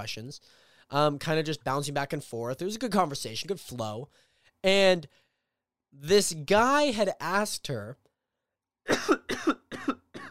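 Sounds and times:
speech: 0.0 - 5.2, 5.9 - 8.0
person coughing: 8.9 - 10.2.

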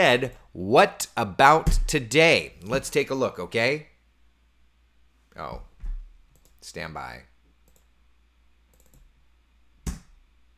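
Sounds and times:
speech: 0.0 - 3.9, 5.4 - 5.7, 6.6 - 7.3
computer mouse clicking: 7.6 - 7.9, 8.7 - 9.1.

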